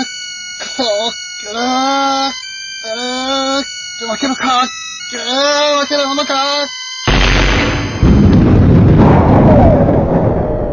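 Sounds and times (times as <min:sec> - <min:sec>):
speech: 0:00.8 - 0:03.1, 0:04.0 - 0:06.8
long rumbling roar of debris: 0:07.1 - 0:10.7
loud explosions with deep booming impact: 0:07.1 - 0:10.7.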